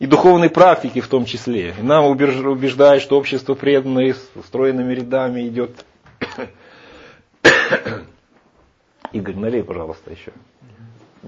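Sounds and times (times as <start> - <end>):
speech: 0.1 - 6.6, 7.7 - 8.1, 9.1 - 11.2
person coughing amid casual conversation: 6.2 - 6.6, 7.4 - 8.2.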